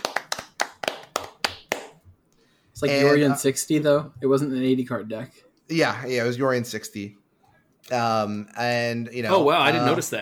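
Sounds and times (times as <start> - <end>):
crisp evenly spaced handclaps: 0.0 - 2.1
speech: 2.8 - 7.2, 7.9 - 10.1.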